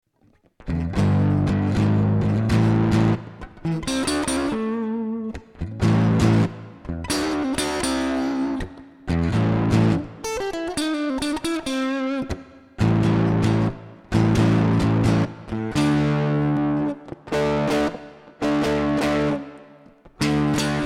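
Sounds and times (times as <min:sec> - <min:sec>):
guitar switching between two distortion settings: 0:00.2 - 0:20.8.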